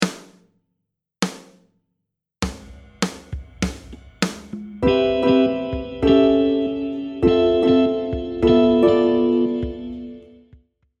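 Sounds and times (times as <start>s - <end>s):
i vi ii V7 chord progression: 4.8s - 10.4s.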